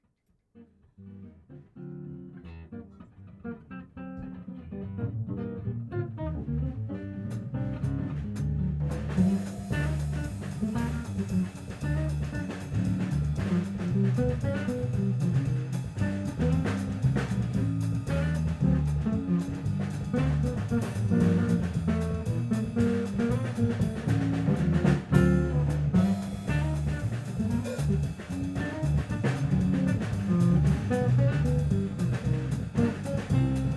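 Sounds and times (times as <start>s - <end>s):
music trio playing: 2.7s - 33.7s.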